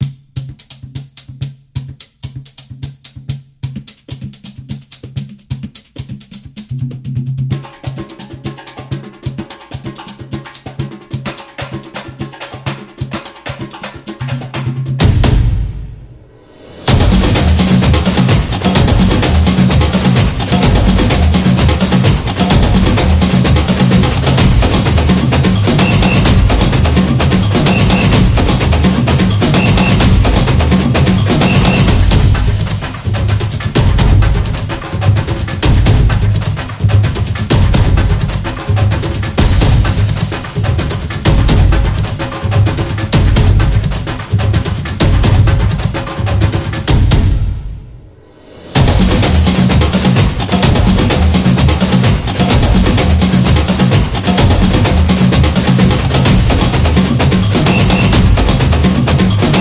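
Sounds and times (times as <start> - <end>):
Latin drums: 0.0 - 59.5.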